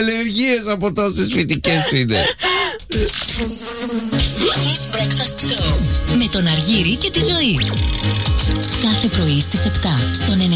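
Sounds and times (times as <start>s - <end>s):
speech: 0.0s - 10.5s
bees buzzing: 3.2s - 10.2s.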